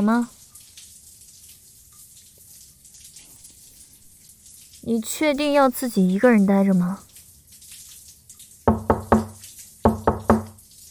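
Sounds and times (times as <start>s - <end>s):
speech: 0.0s - 0.4s, 4.8s - 7.1s
knocking on a closed door: 8.7s - 10.6s.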